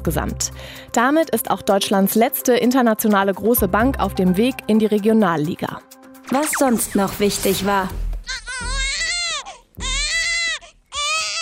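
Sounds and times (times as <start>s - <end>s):
speech: 0.0s - 8.7s
baby wailing: 8.2s - 11.3s.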